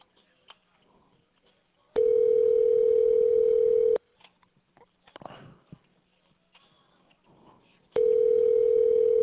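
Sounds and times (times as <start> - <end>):
telephone dial tone while a phone is being dialed: 2.0 - 4.0, 8.0 - 9.2.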